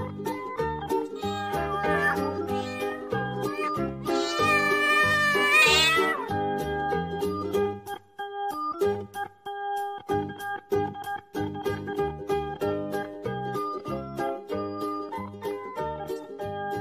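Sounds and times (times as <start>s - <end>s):
steady bouncy musical backing: 0.0s - 16.7s
long drawn-out cat meow: 1.2s - 6.4s.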